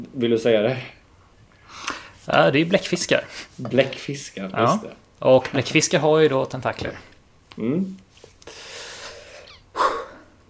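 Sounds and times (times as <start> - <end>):
speech: 0.2 - 1.0, 2.3 - 8.6
heavy breathing: 1.5 - 2.3, 8.4 - 10.4.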